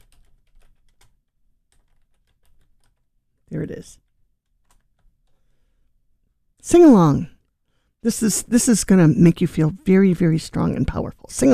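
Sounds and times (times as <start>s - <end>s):
typing on a computer keyboard: 0.0s - 3.1s, 4.0s - 5.4s
speech: 3.5s - 4.1s, 6.6s - 7.3s, 8.0s - 11.5s.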